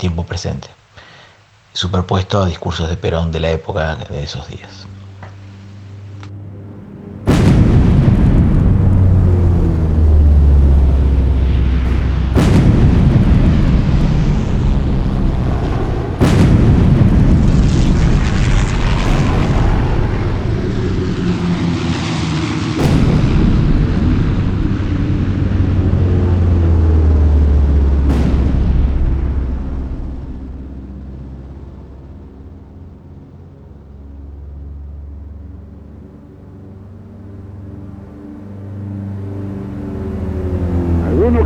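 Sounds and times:
speech: 0:00.0 - 0:00.8, 0:01.8 - 0:04.9
naval aviation aircraft engines roaring: 0:03.4 - 0:41.4
bomb blasts in reconstructed aerial bombing of a city plaza: 0:06.3 - 0:33.0, 0:40.8 - 0:41.4.

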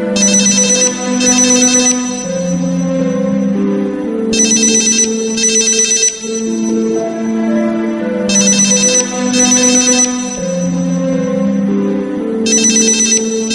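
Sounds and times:
mobile phone in a handbag ringing with a song melody: 0:00.1 - 0:03.7, 0:04.3 - 0:11.7, 0:12.4 - 0:13.5
bright chiming bursts: 0:00.2 - 0:02.9, 0:04.3 - 0:07.2, 0:08.3 - 0:11.1, 0:12.5 - 0:13.5.

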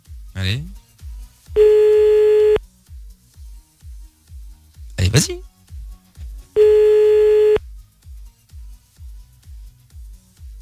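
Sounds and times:
speech: 0:00.4 - 0:00.8, 0:05.2 - 0:05.5
telephone ringback tone on an outgoing call: 0:01.6 - 0:02.6, 0:06.6 - 0:07.6.

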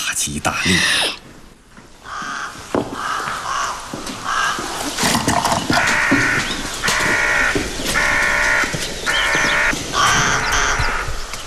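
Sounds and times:
speech: 0:00.2 - 0:01.1
crow cawing in the early morning: 0:02.0 - 0:04.8, 0:05.7 - 0:11.1.

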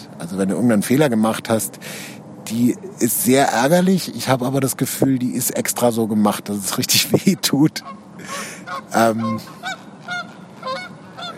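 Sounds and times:
speech: 0:00.2 - 0:09.8
flock of wild geese honking while flying overhead: 0:07.5 - 0:11.3.

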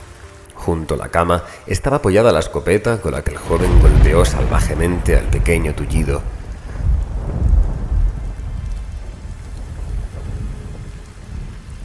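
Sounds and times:
speech: 0:00.7 - 0:06.4
deep rumbling thunder: 0:03.3 - 0:11.8
heavy rain on a window: 0:03.4 - 0:11.8.

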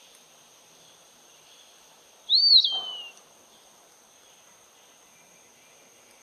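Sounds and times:
Eastern wood pewee (Contopus virens) singing a slurred whistle: 0:02.3 - 0:03.2.

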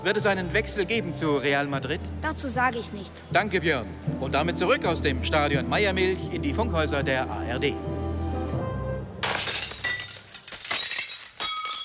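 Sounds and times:
speech: 0:00.0 - 0:08.0
glass shards tinkling and clinking: 0:09.2 - 0:11.8
glass window pane smashed to open a window: 0:09.2 - 0:11.8.

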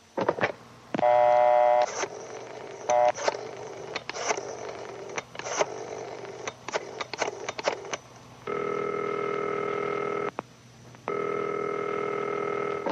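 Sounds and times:
telephone being dialed with short clicks and tones: 0:01.0 - 0:08.0, 0:11.1 - 0:12.9
long steady telephone ringing tones: 0:01.0 - 0:10.3, 0:11.0 - 0:12.9.

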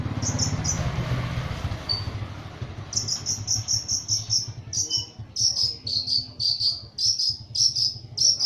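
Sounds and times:
Long-tailed shrike song of short high chirps: 0:00.1 - 0:01.0, 0:01.9 - 0:02.2, 0:02.9 - 0:08.4.

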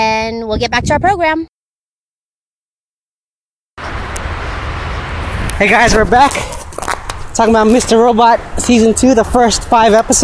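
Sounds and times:
speech: 0:00.3 - 0:01.5, 0:05.6 - 0:06.6, 0:07.4 - 0:10.2
road traffic heard from a running trail: 0:03.8 - 0:10.2.

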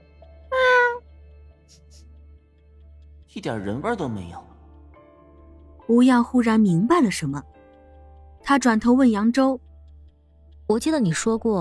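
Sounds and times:
cat meowing: 0:00.5 - 0:01.0
speech: 0:03.4 - 0:04.5, 0:05.9 - 0:07.5, 0:08.5 - 0:09.7, 0:10.7 - 0:11.5.

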